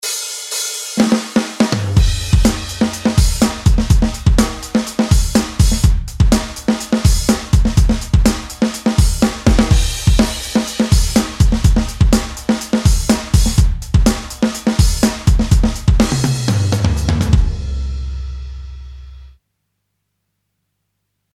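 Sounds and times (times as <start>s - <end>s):
wet drums: 1.0s - 17.7s.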